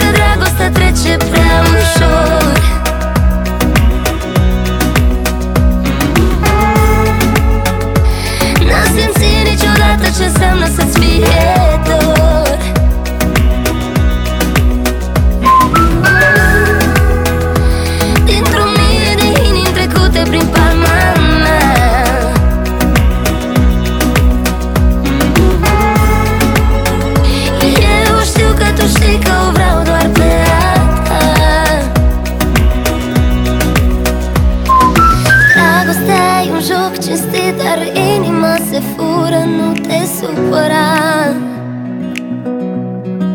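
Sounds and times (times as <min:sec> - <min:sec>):
pop song with steady beat and full instrumental backing: 0:00.0 - 0:43.3
whistling melody in a pop song: 0:15.4 - 0:17.4, 0:34.7 - 0:36.3.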